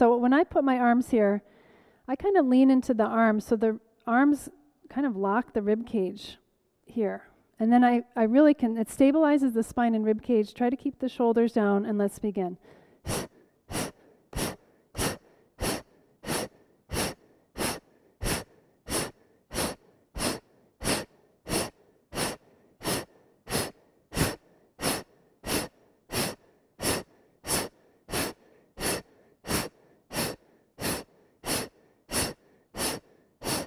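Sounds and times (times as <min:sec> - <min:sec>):
speech: 0:00.0 - 0:13.3
forceful exhalations during a deep belly-breathing exercise: 0:12.6 - 0:33.6.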